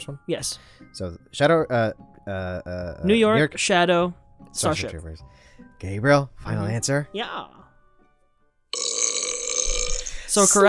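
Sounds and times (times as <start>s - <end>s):
speech: 0.0s - 7.7s, 10.3s - 10.6s
loud raspy burp: 8.7s - 10.2s.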